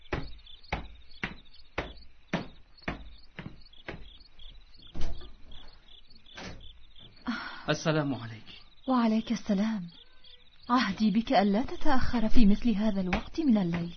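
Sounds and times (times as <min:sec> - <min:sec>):
door being opened at night with sharp clicks and thumps: 0:04.8 - 0:05.7
speech: 0:07.7 - 0:10.0, 0:10.7 - 0:13.9.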